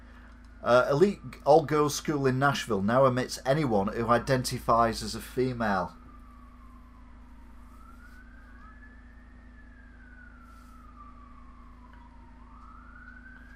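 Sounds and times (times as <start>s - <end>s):
emergency vehicle sirens wailing outside: 0.0s - 13.5s
speech: 0.6s - 6.0s.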